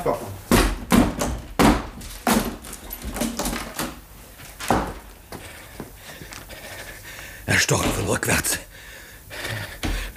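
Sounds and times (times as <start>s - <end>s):
speech: 0.0s - 0.4s, 7.5s - 8.7s
heavy thuds of a locked door being forced open: 0.8s - 4.0s.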